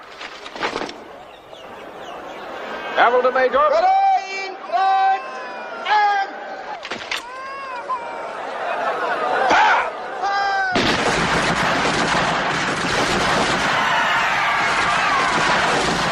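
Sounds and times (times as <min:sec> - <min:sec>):
panicked commotion of a crowd in a six-acre garden: 0:00.0 - 0:16.0
laughter: 0:01.7 - 0:03.7, 0:06.6 - 0:10.8
person shouting an order to fire: 0:03.7 - 0:06.5
dense rifle gunfire from Gurkha and Baluchi troops into a crowd: 0:10.8 - 0:16.0.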